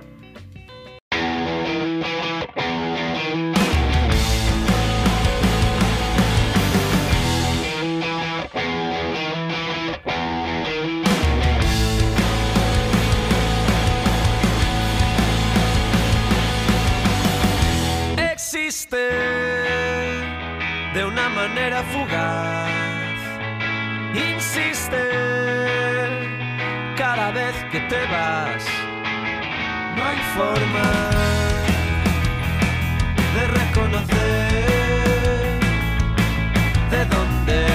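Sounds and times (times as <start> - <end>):
distorted electric guitar in indie rock song: 0.0 - 37.7
driving drum beat in indie rock song: 3.6 - 7.8, 11.1 - 18.2, 30.6 - 37.7
speech: 30.1 - 31.6.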